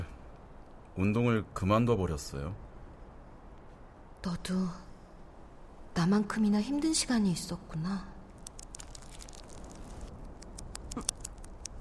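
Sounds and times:
soft steady outdoor hiss: 0:00.0 - 0:11.7
speech: 0:01.0 - 0:02.6, 0:04.2 - 0:04.9, 0:06.0 - 0:08.1
scattered raindrops falling: 0:08.3 - 0:11.7.

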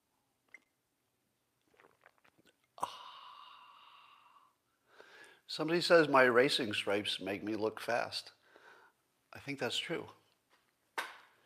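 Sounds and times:
slurping sips of coffee from a mug: 0:01.6 - 0:02.9
satisfied breathy ahh: 0:02.8 - 0:05.5
speech: 0:05.6 - 0:08.4, 0:09.4 - 0:10.2.

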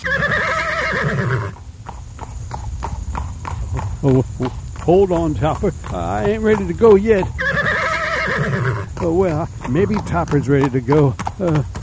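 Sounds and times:
horse whinnying: 0:00.0 - 0:01.6, 0:05.8 - 0:11.8
horse hooves clip-clopping: 0:00.0 - 0:11.8
speech: 0:04.0 - 0:07.5, 0:08.3 - 0:11.8.

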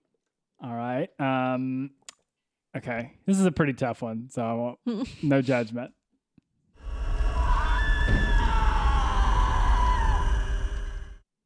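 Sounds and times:
speech: 0:01.0 - 0:02.0, 0:02.8 - 0:06.0
ominous horror-film score with a deep rumbling drone: 0:06.8 - 0:11.2
sustained wavering screams: 0:06.8 - 0:11.2.

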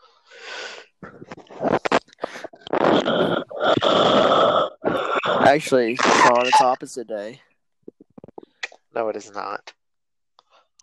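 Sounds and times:
loud heavy raspy wheezy breathing against the microphone: 0:00.0 - 0:06.4
snorting bursts: 0:00.5 - 0:06.8
speech: 0:05.5 - 0:07.5, 0:09.0 - 0:09.6.

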